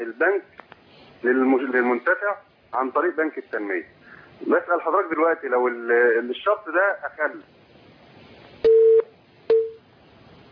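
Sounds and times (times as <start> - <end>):
speech: 0.0 - 0.6, 1.2 - 7.6
telephone busy tone after a call disconnects: 8.6 - 9.8.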